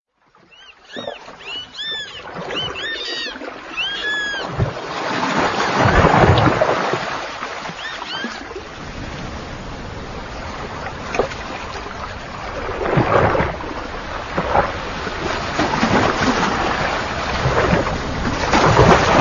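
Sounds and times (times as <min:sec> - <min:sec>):
waves splashing on a boat: 0:00.2 - 0:19.2
seal barking nearby: 0:00.8 - 0:04.6.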